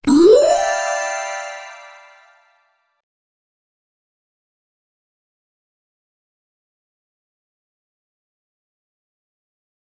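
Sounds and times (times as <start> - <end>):
funny ting tong sound: 0.0 - 2.3.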